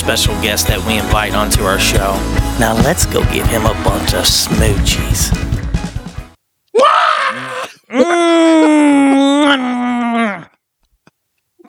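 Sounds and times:
speech: 0.1s - 5.5s
person screaming loudly: 6.7s - 10.6s.

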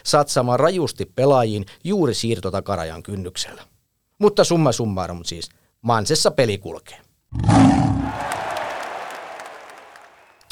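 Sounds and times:
speech: 0.0s - 8.4s
lion roaring with a deep rumbling growl: 7.3s - 8.2s.

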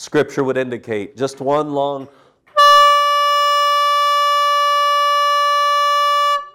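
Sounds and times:
speech: 0.0s - 2.2s
long trumpet blast: 2.6s - 6.5s.

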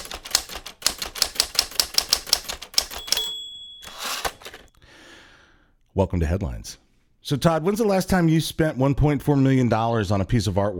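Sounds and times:
typewriter keystrokes: 0.0s - 4.7s
typewriter bell ding: 1.4s - 4.7s
speech: 6.0s - 10.7s.

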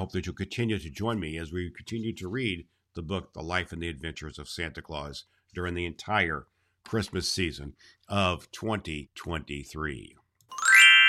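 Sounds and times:
speech: 0.0s - 10.2s
glockenspiel chimes: 10.5s - 11.0s.

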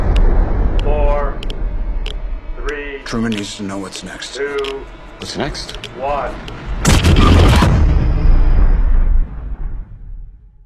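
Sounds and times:
atomic bomb explosion: 0.0s - 2.7s, 6.6s - 10.6s
speech: 3.1s - 7.3s.

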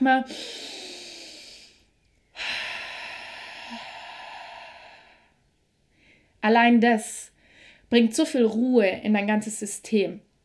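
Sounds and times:
speech: 0.0s - 0.7s, 6.4s - 7.3s, 7.9s - 10.3s
slow deep breath in through nose, out through mouth: 0.3s - 6.4s.

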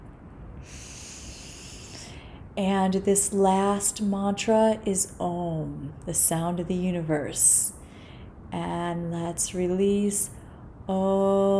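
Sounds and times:
big inhale during meditation: 0.6s - 2.5s, 7.8s - 8.5s
speech: 2.6s - 7.8s, 8.5s - 11.5s.

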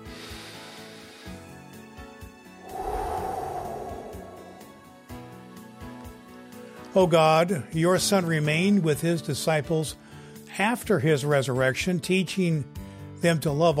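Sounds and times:
slow deep breath during a guided breath prayer: 2.6s - 4.9s
speech: 6.9s - 10.0s, 10.6s - 13.7s.

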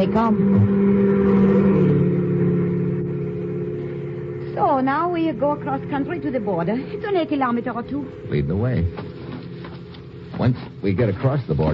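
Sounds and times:
speech: 0.0s - 1.2s, 4.6s - 9.1s, 10.4s - 11.7s
car driving past: 0.0s - 10.8s.

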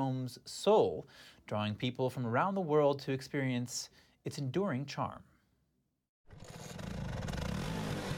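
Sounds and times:
speech: 0.0s - 5.3s, 6.3s - 6.9s
Vespa motor scooter engine revving in Rome, Italy: 6.4s - 8.1s.

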